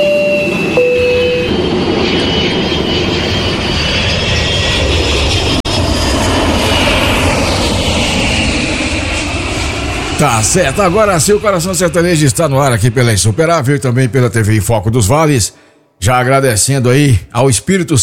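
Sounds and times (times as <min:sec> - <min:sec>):
airplane engines roaring during takeoff: 0:00.0 - 0:15.8
speech: 0:10.4 - 0:18.0.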